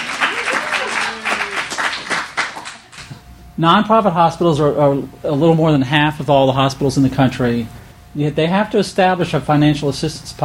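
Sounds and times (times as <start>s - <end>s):
people whooping and cheering: 0.0s - 2.4s
audience applause: 0.0s - 3.1s
speech: 3.6s - 10.4s.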